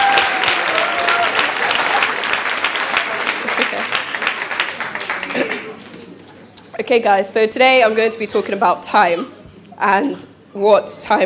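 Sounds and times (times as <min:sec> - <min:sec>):
audience applauding for a volunteer: 0:00.0 - 0:06.0
speech: 0:06.9 - 0:11.2.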